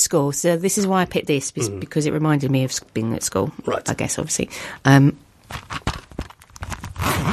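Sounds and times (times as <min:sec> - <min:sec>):
speech: 0:00.1 - 0:06.0
zipper on a pencil case pulled open: 0:06.6 - 0:07.3.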